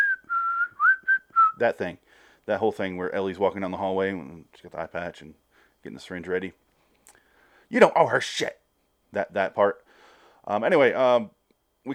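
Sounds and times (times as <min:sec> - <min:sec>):
person whistling eerie melody: 0:00.0 - 0:01.6
speech: 0:01.6 - 0:06.6, 0:07.7 - 0:09.8, 0:10.4 - 0:11.9.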